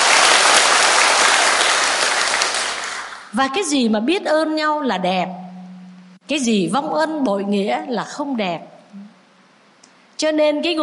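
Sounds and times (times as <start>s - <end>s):
large audience applauding: 0.0s - 3.3s
speech: 3.3s - 5.4s, 6.3s - 9.1s, 10.2s - 10.8s.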